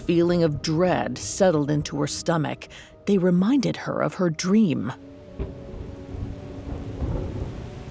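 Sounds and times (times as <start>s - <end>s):
speech: 0.1s - 5.6s
heavy rain: 5.0s - 7.8s
deep rolling thunder: 5.3s - 7.8s.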